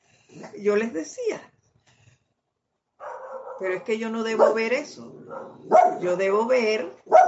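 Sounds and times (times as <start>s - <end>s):
speech: 0.3s - 1.6s, 3.6s - 7.1s
dog barking: 3.0s - 3.7s, 4.4s - 6.1s, 7.0s - 7.2s.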